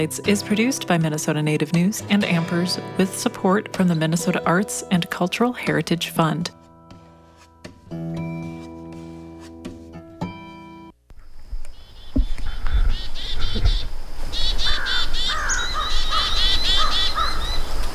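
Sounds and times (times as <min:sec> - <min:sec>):
speech: 0:00.0 - 0:06.6
music: 0:00.0 - 0:11.0
crow calling: 0:11.8 - 0:17.7
chickadees scolding while mobbing a bird predator: 0:11.8 - 0:17.8.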